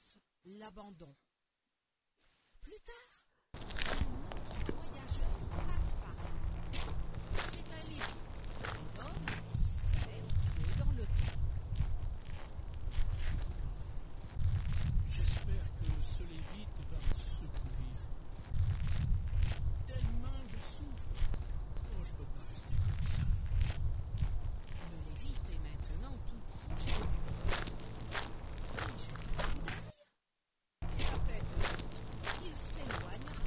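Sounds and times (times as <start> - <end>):
speech: 0.5 - 1.3, 2.6 - 3.2
donkey hooves trotting over crunchy ground: 3.6 - 25.8, 26.7 - 29.9, 30.8 - 33.4
low rumbling background: 3.6 - 29.9, 30.8 - 33.4.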